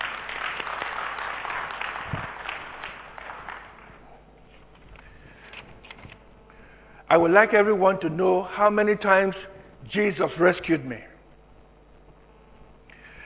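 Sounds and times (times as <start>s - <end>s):
audience applauding: 0.0s - 4.3s
speech: 7.1s - 11.1s.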